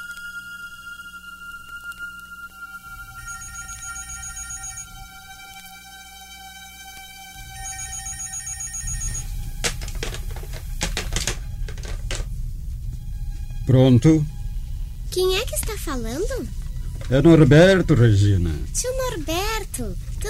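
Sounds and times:
telephone ringing with a steady electronic tone: 0:02.7 - 0:05.3, 0:07.4 - 0:10.5
speech: 0:13.7 - 0:14.3, 0:15.1 - 0:20.2.

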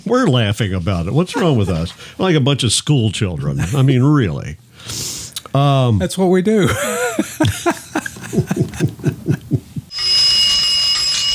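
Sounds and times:
speech: 0:00.0 - 0:07.4
laughter: 0:01.3 - 0:02.0, 0:06.7 - 0:09.9
teletype machine bells ringing: 0:09.9 - 0:11.3.

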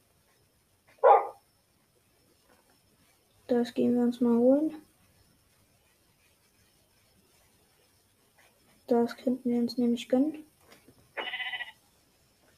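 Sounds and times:
dog barking: 0:01.0 - 0:01.4
speech: 0:03.5 - 0:04.8, 0:09.0 - 0:10.5
sheep bleating: 0:11.2 - 0:11.8.

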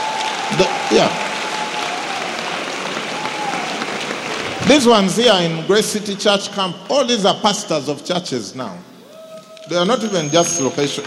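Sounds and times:
church audience applauding for pastors: 0:00.0 - 0:05.6
speech: 0:00.5 - 0:01.3, 0:04.7 - 0:08.9, 0:09.7 - 0:11.0.

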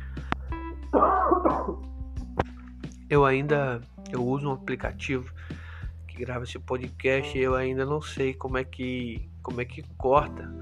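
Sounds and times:
speech: 0:00.9 - 0:02.0, 0:03.1 - 0:05.4, 0:06.2 - 0:10.6
cough: 0:01.0 - 0:01.8
throat sounds: 0:01.0 - 0:02.6.

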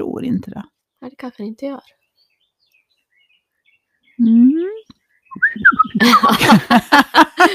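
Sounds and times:
speech: 0:00.2 - 0:02.0, 0:04.2 - 0:04.7, 0:05.4 - 0:07.5
person whistling imitating birdsong: 0:04.2 - 0:06.3
person laughing: 0:05.4 - 0:07.5.

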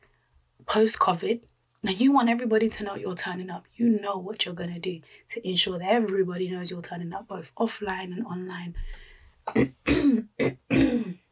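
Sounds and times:
speech: 0:00.7 - 0:11.1
person with an irritated throat clearing throat: 0:09.5 - 0:11.3.

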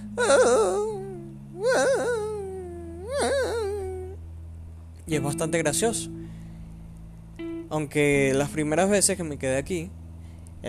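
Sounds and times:
person imitating the hoarse bark of a dog with damaged vocal cords: 0:00.0 - 0:04.2
speech: 0:00.2 - 0:01.0, 0:05.1 - 0:06.2, 0:07.7 - 0:10.0.

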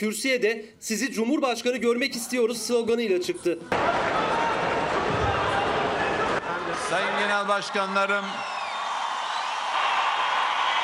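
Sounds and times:
speech: 0:00.0 - 0:04.6, 0:06.9 - 0:08.6
dense continuous applause from a large crowd in a big room: 0:03.7 - 0:10.8.

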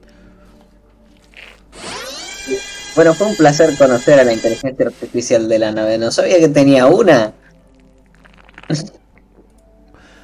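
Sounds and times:
power drill drilling partway into a horn: 0:01.7 - 0:04.6
speech: 0:02.5 - 0:07.4, 0:08.7 - 0:08.9.

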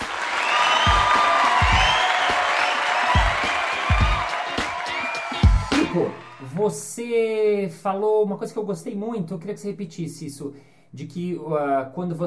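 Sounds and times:
whoops and cheers: 0:00.0 - 0:06.7
crowd applauding: 0:00.0 - 0:06.8
speech: 0:06.0 - 0:12.2.

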